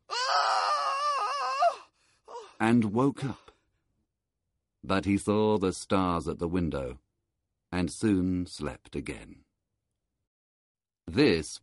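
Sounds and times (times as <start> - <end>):
man screaming: 0.1 - 1.8
speech: 2.6 - 3.4, 4.8 - 7.0, 7.7 - 9.4, 11.1 - 11.6.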